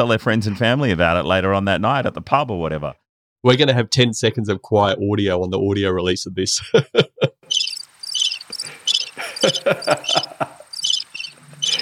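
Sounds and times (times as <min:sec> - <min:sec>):
speech: 0:00.0 - 0:07.7, 0:09.4 - 0:10.6
laughter: 0:06.6 - 0:07.5, 0:08.7 - 0:10.8
crickets chirping: 0:07.5 - 0:11.8
rustling or croaking sounds: 0:07.5 - 0:11.8.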